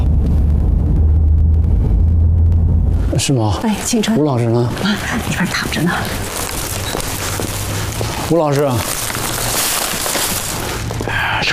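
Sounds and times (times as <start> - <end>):
steady low rumble of a car being driven: 0.0 - 11.5
speech: 3.2 - 6.4, 8.3 - 9.0.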